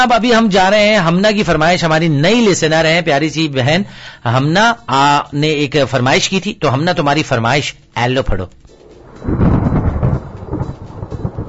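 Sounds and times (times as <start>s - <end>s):
speech: 0.0s - 8.6s, 9.2s - 9.7s
rolling rumble of thunder: 8.7s - 11.4s
steady rain: 8.7s - 11.4s.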